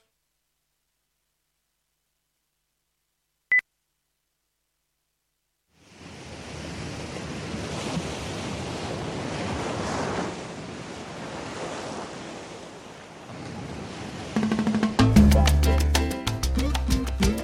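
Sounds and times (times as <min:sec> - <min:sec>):
sea waves rushing: 0:05.8 - 0:15.6
band music with bass and percussion: 0:14.5 - 0:17.4.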